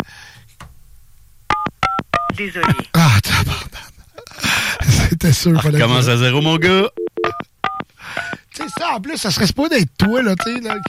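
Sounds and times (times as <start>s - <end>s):
touch-tone beeps of a telephone number being dialed: 1.5s - 2.9s, 7.0s - 8.9s, 10.4s - 10.8s
speech: 2.4s - 3.7s, 5.2s - 7.0s, 8.8s - 10.8s.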